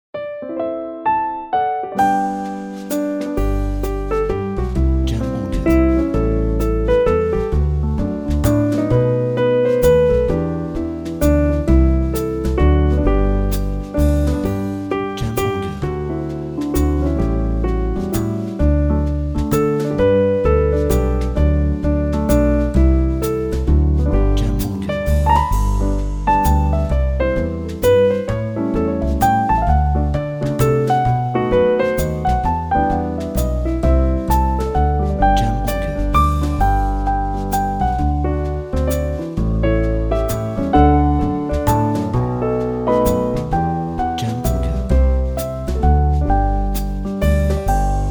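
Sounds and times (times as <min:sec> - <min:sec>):
Christmas jazz music: 0:00.2 - 0:48.0.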